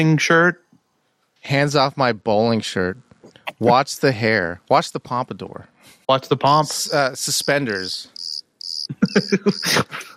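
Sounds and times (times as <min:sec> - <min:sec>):
speech: 0:00.0 - 0:00.6, 0:01.4 - 0:08.1, 0:08.9 - 0:10.1
cricket chirping: 0:06.8 - 0:09.8
laughter: 0:08.9 - 0:10.1.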